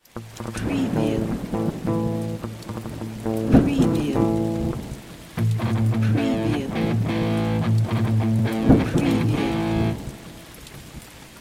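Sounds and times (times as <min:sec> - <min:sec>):
crunchy electric guitar power chords: 0:00.2 - 0:10.4.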